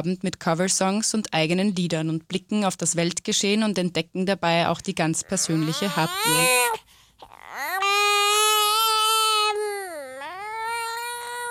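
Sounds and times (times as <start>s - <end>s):
speech: 0.0s - 6.8s
baby crying: 5.2s - 11.5s.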